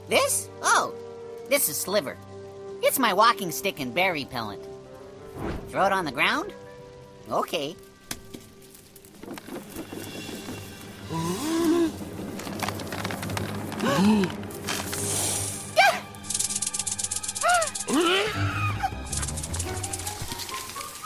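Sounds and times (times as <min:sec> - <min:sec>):
speech: 0:00.1 - 0:04.7, 0:05.4 - 0:06.6, 0:07.2 - 0:07.8, 0:13.9 - 0:14.4
rattlesnake rattling: 0:08.5 - 0:18.2, 0:18.8 - 0:21.0.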